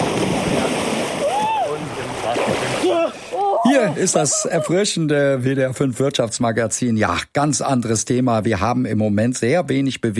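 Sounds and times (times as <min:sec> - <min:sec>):
water splashing and churning in a pool: 0:00.0 - 0:04.6
people shouting: 0:01.2 - 0:01.8, 0:02.8 - 0:04.8
speech: 0:03.8 - 0:10.1.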